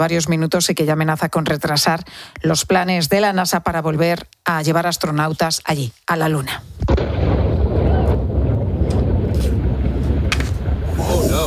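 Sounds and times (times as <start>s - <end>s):
speech: 0.0s - 7.0s
distant rocket explosion during engine test at Cape Canaveral, Florida: 6.8s - 11.4s
wind buffeting the microphone: 7.1s - 11.4s.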